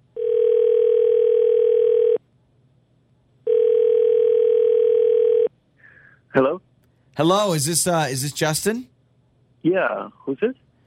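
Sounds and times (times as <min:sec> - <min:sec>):
electronic telephone ringback tones on an outgoing call: 0:00.2 - 0:02.2, 0:03.5 - 0:05.5
speech: 0:06.4 - 0:08.9, 0:09.6 - 0:10.6.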